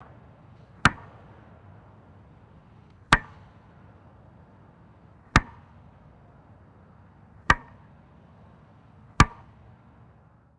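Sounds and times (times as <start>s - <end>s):
wooden bat tapping rubber home plate: 0.0s - 1.4s, 2.9s - 3.6s, 5.3s - 5.8s, 7.5s - 8.0s, 9.2s - 9.6s.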